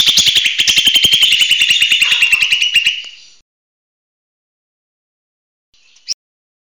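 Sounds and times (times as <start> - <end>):
leafbird buzzy rattling trill song: 0.2 - 3.0.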